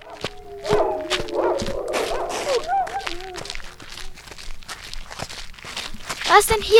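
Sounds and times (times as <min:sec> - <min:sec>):
dogs barking and yelping: 0:00.0 - 0:04.4
rustling: 0:00.0 - 0:06.7
scuffling steps: 0:00.0 - 0:06.7
speech: 0:06.3 - 0:06.7.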